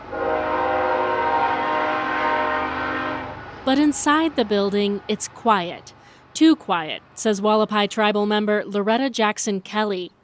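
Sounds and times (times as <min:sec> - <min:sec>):
freight train horn passing the small town of Peach Springs: 0:00.0 - 0:03.4
speech: 0:03.6 - 0:10.2.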